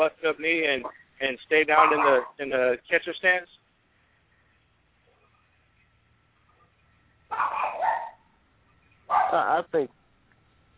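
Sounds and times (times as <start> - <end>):
speech: 0.0 - 3.6, 7.3 - 7.6, 9.1 - 10.0
dog barking and yelping while being played with: 1.8 - 2.4, 6.5 - 8.3, 9.1 - 9.5.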